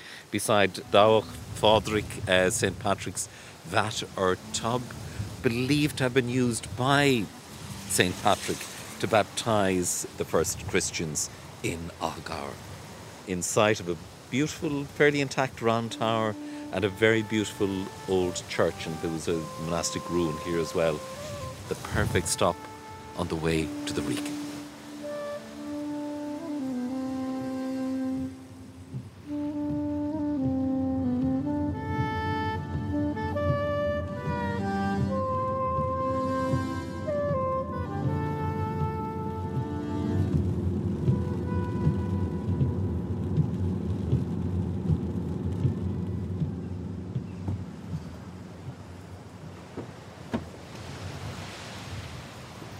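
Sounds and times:
gusting wind at the foot of a mountain: 0.0s - 52.7s
rain at the foot of a mountain: 0.0s - 52.7s
speech: 0.3s - 12.7s, 13.3s - 24.4s
tonal melody: 0.5s - 2.7s, 3.7s - 10.0s, 15.1s - 48.8s.

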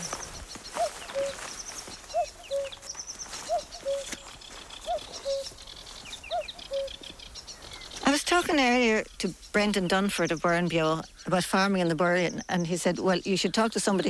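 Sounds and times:
spring bird chorus twittering and chirping in the Burren: 0.0s - 14.0s
speech: 8.3s - 14.0s.

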